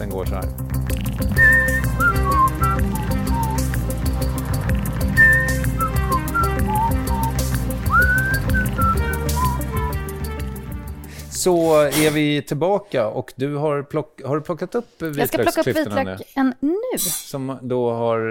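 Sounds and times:
speech: 0.0 - 1.6, 11.4 - 18.2
person whistling a clear wavering melody: 1.4 - 3.8, 5.2 - 10.1
full band accompaniment: 1.4 - 11.0.

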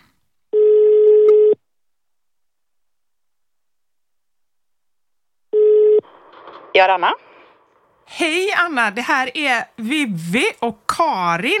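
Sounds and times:
telephone ringback tone while placing a call: 0.6 - 1.6, 5.5 - 6.1
speech: 6.8 - 7.3, 8.1 - 11.5.

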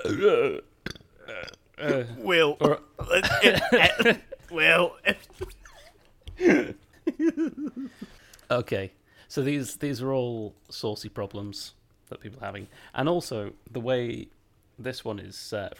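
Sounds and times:
speech: 0.0 - 0.7, 1.3 - 5.6, 6.4 - 15.7
burp: 0.0 - 3.6
laughter: 3.0 - 8.0.

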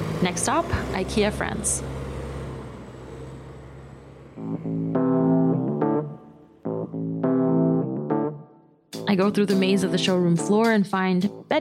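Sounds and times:
bus engine roaring and revving as a bus arrives at a stop: 0.0 - 8.4
speech: 0.2 - 2.0, 9.1 - 11.5.

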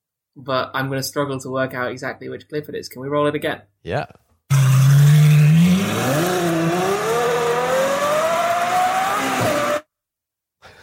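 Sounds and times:
speech: 0.4 - 4.2, 6.0 - 6.4
Ferrari V12 engine in an F12 with an aftermarket exhaust revving: 4.5 - 9.8.

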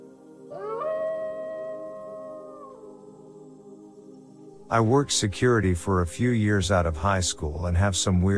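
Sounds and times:
wolf howling: 0.5 - 3.4
speech: 4.7 - 8.3.

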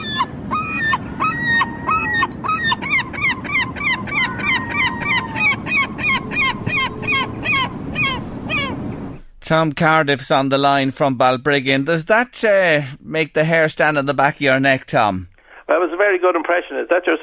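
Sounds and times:
flock of herring gulls calling: 0.0 - 9.2
low rumble: 0.0 - 9.8
speech: 9.5 - 17.2.

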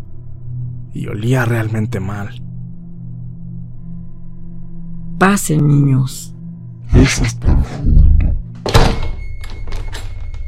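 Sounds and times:
speech: 0.9 - 2.5, 5.2 - 8.0
heavy front door slamming shut: 8.6 - 10.2
front door rattling as it settles: 8.6 - 10.4.

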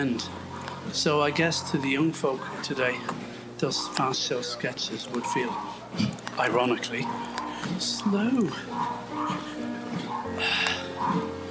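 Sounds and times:
dog barking outdoors on a side road: 0.0 - 3.0, 3.8 - 11.4
speech: 0.0 - 9.3.

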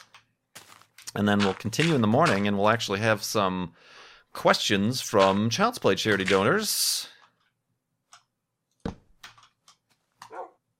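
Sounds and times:
speech: 1.2 - 7.1
dog barking: 10.3 - 10.6.

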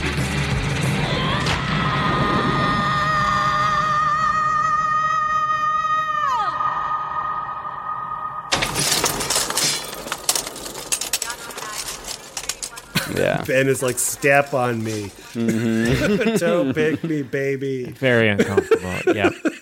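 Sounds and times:
woman's slowed primal scream of rage: 1.0 - 8.5
crashing shatter and clatter: 8.5 - 15.4
laughter: 12.9 - 13.8, 15.1 - 19.5
speech: 13.5 - 19.5.

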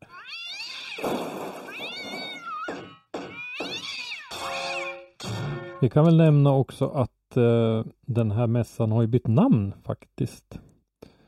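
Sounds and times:
cat meowing insistently to be let out: 0.0 - 4.8
speech: 5.8 - 10.6.

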